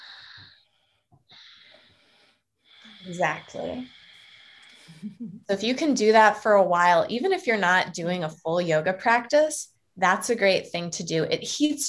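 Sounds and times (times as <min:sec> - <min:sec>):
slow yogic breathing with soft hissing throat constriction: 0:00.0 - 0:05.2
speech: 0:03.0 - 0:04.0, 0:04.9 - 0:11.8.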